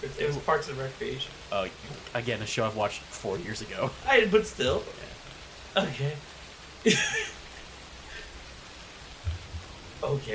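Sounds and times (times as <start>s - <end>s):
speech: 0.0s - 5.1s, 5.7s - 7.4s, 10.0s - 10.3s
rain pattering: 0.0s - 10.3s
soft low thump: 9.2s - 9.8s.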